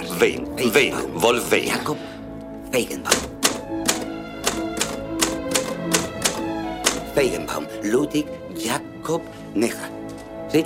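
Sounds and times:
speech: 0.2 - 3.3, 7.2 - 10.6
mechanical typewriter keys clacking: 3.1 - 7.1.

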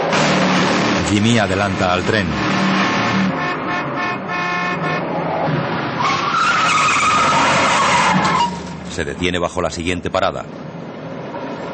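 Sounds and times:
car tires screeching as it skids to a stop: 0.0 - 9.1
speech: 1.1 - 3.3, 9.0 - 10.7.

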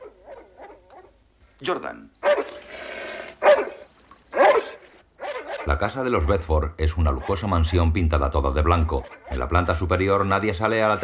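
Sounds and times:
dog barking: 0.0 - 1.2, 2.2 - 2.6, 3.4 - 5.8, 9.0 - 9.5
speech: 1.6 - 2.6, 5.7 - 11.0.

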